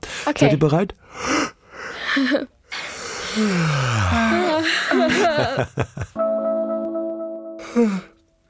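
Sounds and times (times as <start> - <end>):
speech: 0.3 - 1.3, 2.2 - 2.8, 3.4 - 6.3, 7.7 - 8.1
long hearty human yawn with a drawn-out groan: 3.3 - 4.7, 7.6 - 8.2
laughter: 4.3 - 6.2.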